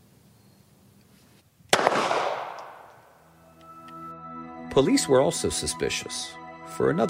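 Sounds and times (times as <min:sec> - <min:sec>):
pistol fired after loading magazine and racking slide: 0:01.7 - 0:03.2
speech: 0:04.8 - 0:07.0.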